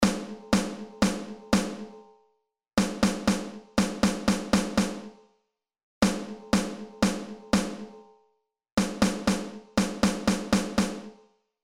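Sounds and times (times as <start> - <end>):
snare drum rhythms: 0.0 - 2.0, 2.8 - 5.2, 6.0 - 8.0, 8.8 - 11.2.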